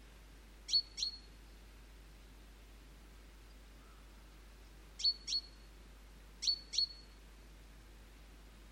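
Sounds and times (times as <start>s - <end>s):
steady low background hiss: 0.0s - 8.6s
great tit calls: 0.7s - 1.3s, 5.0s - 5.7s, 6.4s - 7.2s.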